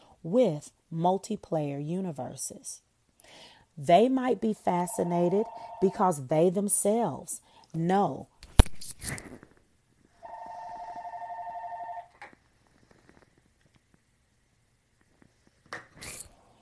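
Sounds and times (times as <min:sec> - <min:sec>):
speech: 0:00.2 - 0:08.3
telephone ringing with a trilling electronic burst: 0:04.8 - 0:06.1, 0:10.2 - 0:12.2.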